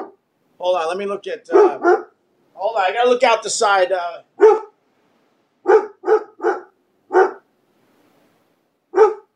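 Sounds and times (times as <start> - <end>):
dog barking: 0.0 - 0.2, 1.5 - 2.2, 4.4 - 4.8, 5.6 - 7.5, 8.9 - 9.3
speech: 0.6 - 2.0, 2.6 - 4.6.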